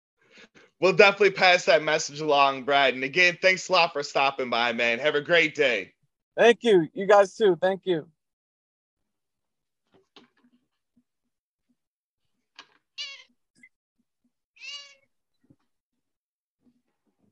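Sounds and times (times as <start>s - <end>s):
speech: 0.4s - 8.2s
cats meowing: 13.0s - 13.3s, 14.6s - 15.1s.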